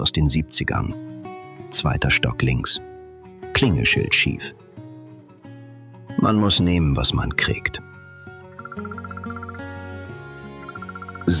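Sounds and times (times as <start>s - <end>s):
speech: 0.0s - 1.1s, 1.7s - 2.9s, 3.6s - 4.6s, 6.2s - 7.9s
electronic alarm clock beeping: 7.2s - 11.3s
sustained melodic alarm clock tone: 7.3s - 11.3s.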